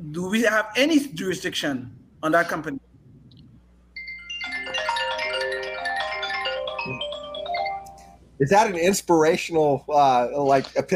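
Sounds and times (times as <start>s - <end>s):
speech: 0.1s - 2.9s, 8.4s - 10.9s
incoming phone call ringtone with bright layered electronic melody: 4.0s - 8.2s.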